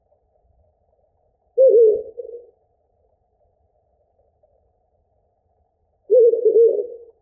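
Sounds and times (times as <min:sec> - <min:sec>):
owl hooting: 0:01.6 - 0:02.5, 0:06.1 - 0:07.2.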